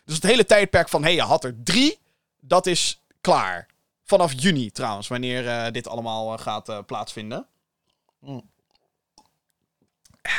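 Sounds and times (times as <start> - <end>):
speech: 0.1 - 7.5, 8.2 - 8.5
person gulping a drink: 7.8 - 9.4
person sipping a drink: 7.8 - 9.4.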